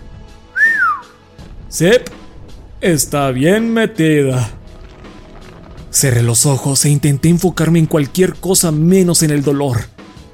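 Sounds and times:
man whistling: 0.5 - 1.2
speech: 1.8 - 2.2, 2.8 - 4.6, 6.0 - 10.0.

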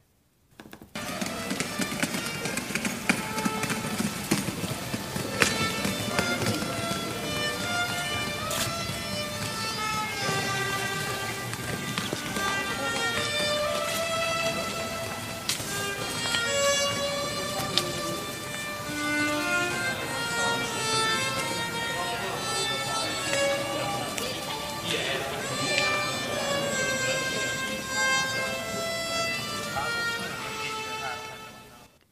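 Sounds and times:
stroller wheels rolling over pebble-paved street: 1.0 - 31.8
violinist playing a wavering tune in the street: 1.0 - 32.0.

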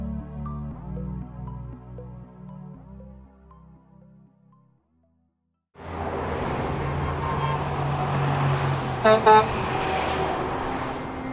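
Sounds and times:
car traffic roar in Los Angeles: 5.8 - 11.3
car horn honks: 7.0 - 7.7, 9.0 - 9.7.

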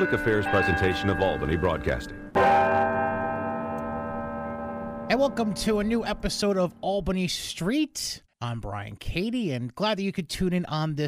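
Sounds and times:
speech: 0.0 - 2.6, 5.1 - 11.0
large historic city hall bell ringing: 0.0 - 7.2.

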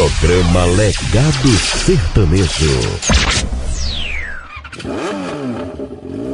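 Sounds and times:
speech: 0.2 - 3.5
motorcycle engine revving: 4.1 - 6.3.

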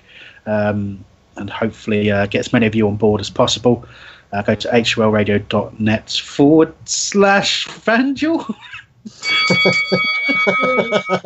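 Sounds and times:
speech: 0.4 - 11.2
laughter: 8.4 - 11.2
bright bell ringing as a transfer jingle: 9.1 - 11.2
busy rhythmic pulsing sounds: 9.1 - 11.2.

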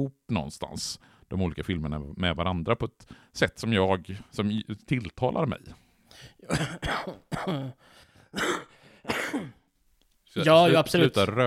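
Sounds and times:
speech: 0.0 - 9.6, 10.3 - 11.4
harsh raspy coughing: 6.4 - 9.7
throat clearing: 6.5 - 7.8, 8.4 - 9.6.

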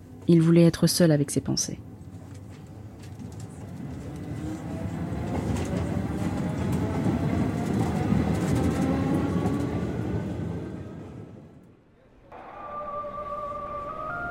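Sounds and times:
commuter train rumbling with a droning motor whine: 0.0 - 14.2
speech: 0.3 - 1.9
high tonal hum of commuter train: 12.0 - 14.2.

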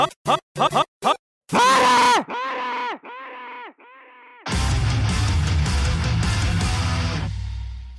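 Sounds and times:
speech: 0.0 - 0.8
person wailing: 0.3 - 4.5
person gasping for air and screaming: 1.5 - 4.5
full busy music: 4.5 - 7.9.

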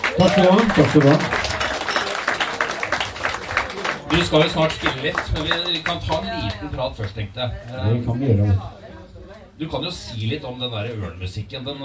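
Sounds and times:
audience applause welcoming a guest: 0.0 - 7.2
speech: 0.2 - 1.5, 4.1 - 8.8, 9.6 - 11.8.

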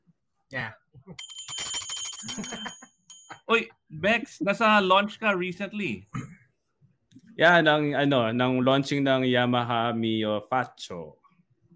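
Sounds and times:
speech: 0.5 - 1.4, 2.2 - 2.8, 3.5 - 6.2, 7.4 - 11.2
bicycle bell ringing: 1.2 - 3.5.

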